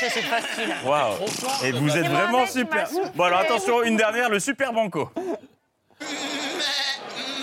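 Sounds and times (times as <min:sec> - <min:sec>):
goat bleating: 0:00.0 - 0:01.3, 0:06.0 - 0:07.4
speech: 0:00.1 - 0:05.4.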